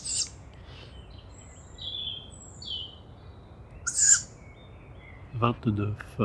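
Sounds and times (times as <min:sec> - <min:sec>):
young tawny owl hissing at a nest site in Bois de Vincennes: 0:00.0 - 0:01.0, 0:03.9 - 0:04.3
birds whistling thin notes: 0:00.0 - 0:06.2
speech: 0:05.4 - 0:06.2.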